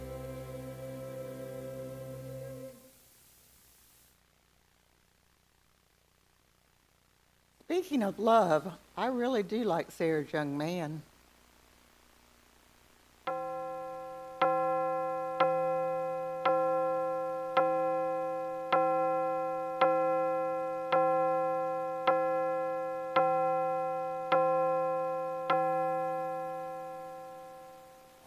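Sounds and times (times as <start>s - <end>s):
speech: 7.7s - 11.1s
clock chiming late at night at Christmas: 13.3s - 27.9s.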